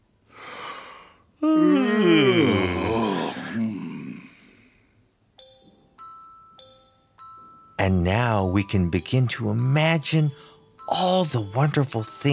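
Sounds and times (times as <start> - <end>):
person yawning: 0.4 - 4.7
speech: 7.9 - 12.3.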